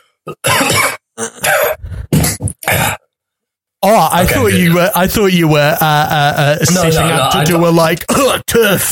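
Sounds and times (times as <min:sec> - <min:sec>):
strained raspy throat sounds and hacking: 0:00.2 - 0:03.2
person coughing after choking on water: 0:00.3 - 0:03.1, 0:08.1 - 0:08.4
speech: 0:04.2 - 0:08.9.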